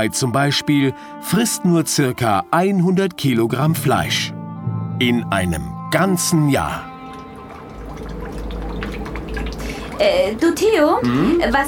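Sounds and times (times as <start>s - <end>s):
speech: 0.0s - 4.4s, 5.0s - 6.9s, 10.0s - 11.6s
water dripping and trickling into a submarine: 5.8s - 11.6s
low rumbling hum: 7.0s - 11.0s.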